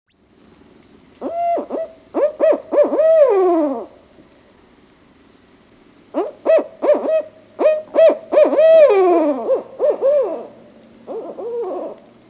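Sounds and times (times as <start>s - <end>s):
barred owl calls: 1.2s - 3.9s, 6.1s - 12.0s.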